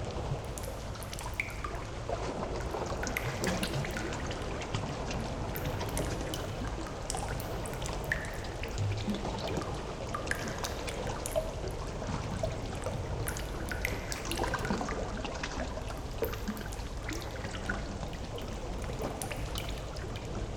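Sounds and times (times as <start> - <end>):
light water flowing: 0.0 - 20.5.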